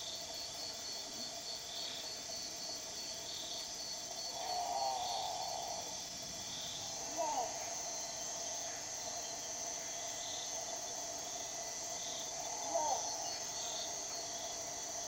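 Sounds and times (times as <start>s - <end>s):
high-pitched insect chorus: 0.0s - 15.0s
great potoo growling: 4.1s - 14.8s.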